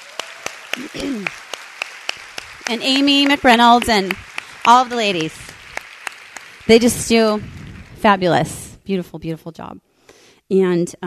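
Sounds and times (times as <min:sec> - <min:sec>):
hand claps applause at an evening gathering: 0:00.0 - 0:08.1
speech: 0:00.8 - 0:01.4, 0:02.7 - 0:05.5, 0:06.7 - 0:09.8, 0:10.5 - 0:11.0.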